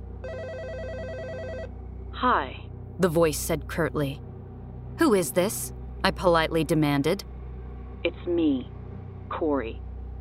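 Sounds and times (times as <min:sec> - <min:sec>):
low steady hum: 0:00.0 - 0:10.1
telephone ringing with an electronic trill: 0:00.2 - 0:01.7
speech: 0:02.2 - 0:04.3, 0:05.0 - 0:07.3, 0:08.0 - 0:09.9.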